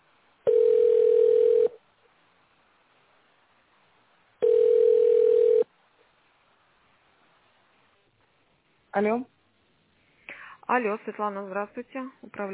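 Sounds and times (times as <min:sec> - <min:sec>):
telephone ringback tone while a call is put through: 0:00.5 - 0:01.8, 0:04.4 - 0:05.6
speech: 0:09.0 - 0:09.4, 0:10.7 - 0:12.5.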